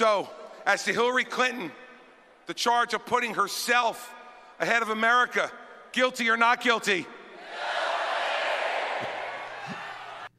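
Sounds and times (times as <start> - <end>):
speech: 0.0 - 1.8, 2.5 - 7.7
large crowd shouting a word in unison: 7.4 - 10.3.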